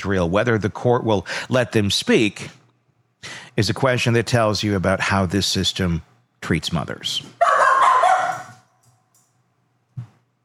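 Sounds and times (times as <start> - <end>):
speech: 0.0 - 2.6, 3.2 - 7.5
dog barking: 7.4 - 8.7.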